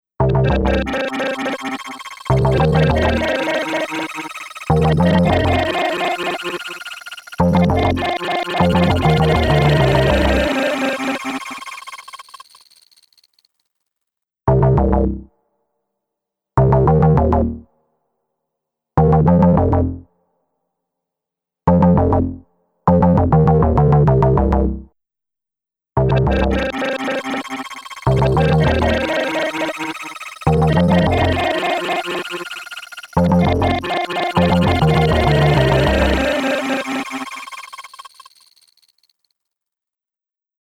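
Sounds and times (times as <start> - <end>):
bass synth: 0.2 - 11.4, 14.5 - 15.3, 16.6 - 17.7, 19.0 - 20.1, 21.7 - 24.9, 26.0 - 37.3.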